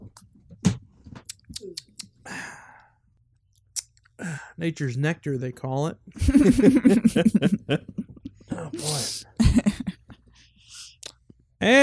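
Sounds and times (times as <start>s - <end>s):
wet mouth clicks while sipping a beer mimosa: 1.3s - 2.2s, 3.6s - 4.1s, 11.0s - 11.4s
satisfied breathy exhale: 2.2s - 3.0s
speech: 4.2s - 8.0s, 11.6s - 11.8s
laughter: 6.2s - 10.2s.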